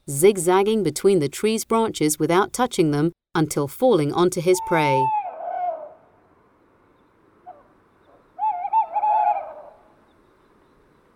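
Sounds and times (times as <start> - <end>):
speech: 0.1 - 5.2
tawny owl hooting: 4.6 - 6.1, 7.4 - 10.0.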